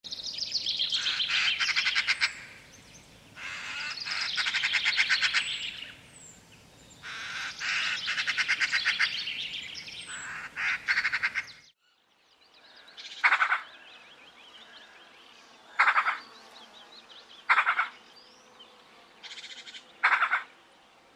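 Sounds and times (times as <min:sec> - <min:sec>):
magpie: 0:00.8 - 0:02.6, 0:03.4 - 0:06.0, 0:07.0 - 0:11.6, 0:13.0 - 0:13.7, 0:15.8 - 0:16.2, 0:17.5 - 0:18.0, 0:19.2 - 0:20.5.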